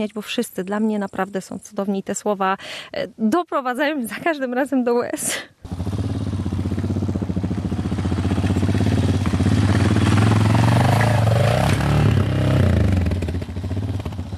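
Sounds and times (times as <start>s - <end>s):
speech: 0.0s - 5.8s
light motorcycle engine revving: 5.6s - 14.3s.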